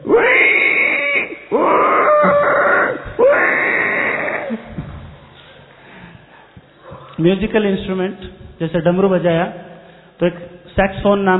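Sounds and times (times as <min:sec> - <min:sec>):
pig squealing while its legs are tied: 0:00.0 - 0:04.7
speech: 0:07.2 - 0:11.3.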